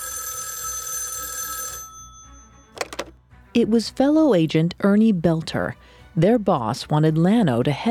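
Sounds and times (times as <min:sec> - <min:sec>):
telephone bell ringing: 0:00.0 - 0:02.8
speech: 0:03.6 - 0:07.8.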